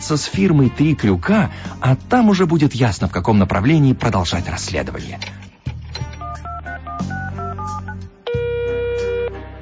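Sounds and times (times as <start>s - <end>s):
speech: 0.0s - 5.4s
touch-tone beeps of a telephone number being dialed: 6.2s - 9.3s.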